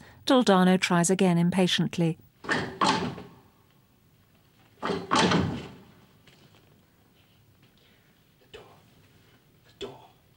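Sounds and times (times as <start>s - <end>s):
speech: 0.3s - 2.7s
heavy secret-passage door mechanism clunking, worked by lifting a lever: 2.4s - 3.4s, 4.8s - 6.0s.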